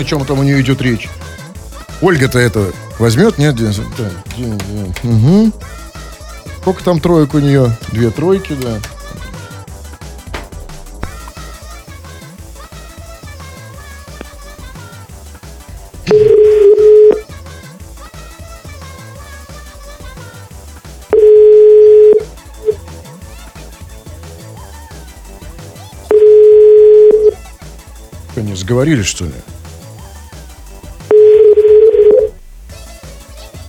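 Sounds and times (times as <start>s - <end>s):
speech: 0.0s - 5.8s, 6.6s - 8.9s, 28.8s - 29.6s
quiet music: 0.0s - 33.6s
telephone ringback tone: 16.1s - 17.2s, 21.1s - 22.8s, 26.1s - 27.4s, 31.1s - 32.4s.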